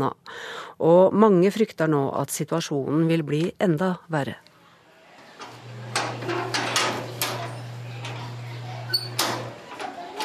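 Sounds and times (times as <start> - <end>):
speech: 0.0 - 4.5
heavy metal grille gate in central Manila being opened: 5.3 - 10.2.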